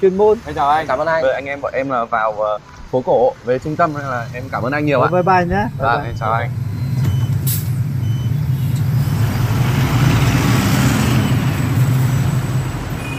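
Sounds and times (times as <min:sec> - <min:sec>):
speech: 0:00.0 - 0:06.7
electric city bus rumble and hiss: 0:04.0 - 0:13.0.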